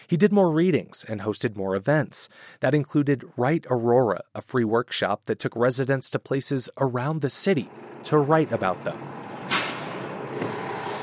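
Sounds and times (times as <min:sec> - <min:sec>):
speech: 0:00.1 - 0:09.2
15L city bus engine and road drone: 0:07.5 - 0:11.0
city bus air brakes releasing: 0:09.0 - 0:11.0.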